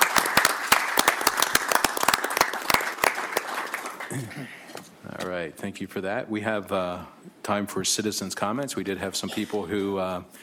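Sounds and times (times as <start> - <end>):
round of applause from a small group: 0.0 - 4.4
speech: 4.1 - 10.4.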